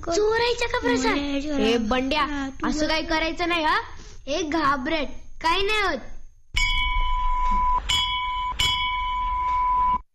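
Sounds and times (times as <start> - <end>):
speech: 0.0 - 6.1
temple bell rung loudly during a puja: 6.6 - 9.8.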